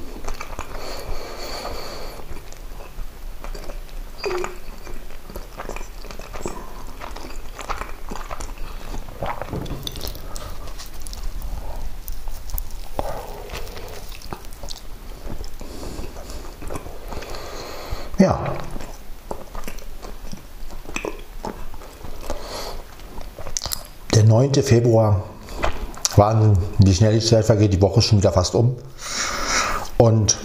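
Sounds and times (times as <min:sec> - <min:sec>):
biting and chewing a bread roll: 0:00.0 - 0:24.2
speech: 0:04.2 - 0:04.6, 0:24.4 - 0:25.3, 0:26.2 - 0:29.3, 0:30.0 - 0:30.4.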